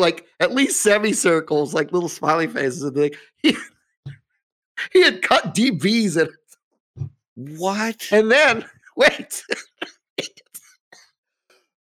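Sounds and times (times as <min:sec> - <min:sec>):
speech: 0:00.0 - 0:04.2, 0:04.8 - 0:06.4, 0:07.0 - 0:10.4
person coughing while laughing: 0:09.2 - 0:11.1.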